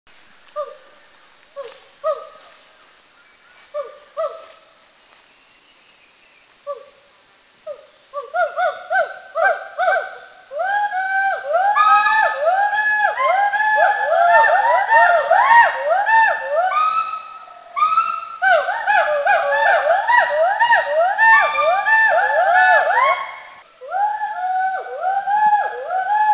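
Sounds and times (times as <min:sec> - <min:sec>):
Hoolock gibbon calling in Mishmi India: 0:07.6 - 0:26.3.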